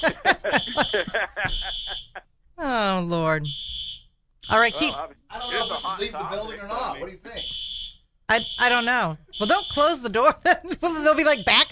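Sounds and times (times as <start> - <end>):
speech: 0.0 - 2.0, 2.7 - 3.7, 4.5 - 5.2, 5.9 - 7.6, 8.3 - 11.7
laughter: 0.0 - 2.2, 4.8 - 7.4
fire alarm high steady electronic tone: 0.5 - 2.2, 3.4 - 6.3, 7.4 - 10.0.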